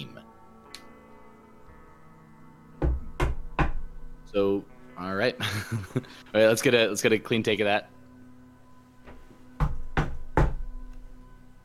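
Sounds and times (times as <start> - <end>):
firm knocks on a wooden door: 2.8 - 3.9, 9.6 - 10.6
speech: 4.3 - 8.0
laughter: 5.4 - 6.3.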